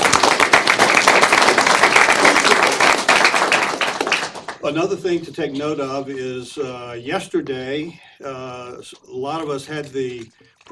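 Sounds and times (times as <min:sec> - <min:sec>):
sizable crowd applauding: 0:00.0 - 0:04.6
speech: 0:04.7 - 0:10.6.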